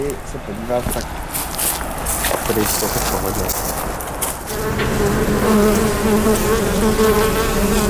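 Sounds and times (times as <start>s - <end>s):
speech: 0.0s - 1.5s, 2.5s - 3.6s, 4.7s - 7.8s
many bees buzzing beside a museum beehouse: 2.8s - 7.8s.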